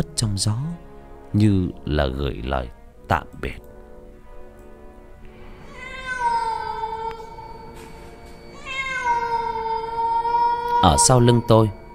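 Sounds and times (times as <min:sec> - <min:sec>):
speech: 0:00.0 - 0:03.7, 0:10.8 - 0:11.8
black cat meowing: 0:05.6 - 0:07.8, 0:08.5 - 0:11.8.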